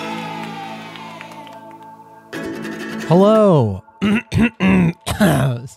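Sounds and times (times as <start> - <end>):
speech: 3.1 - 5.7
person clearing throat: 4.0 - 5.7.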